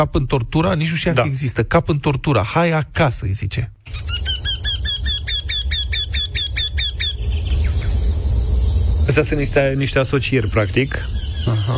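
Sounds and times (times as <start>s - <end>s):
speech: 0.0s - 4.1s, 9.1s - 11.7s
low rumble: 0.0s - 11.7s
bird calling in squawking chirps: 3.9s - 9.1s, 9.8s - 11.7s.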